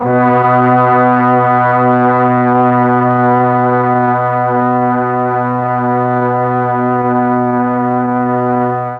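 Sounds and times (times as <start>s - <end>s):
half speed brass: 0.0s - 8.9s
mellotron: 0.0s - 8.9s.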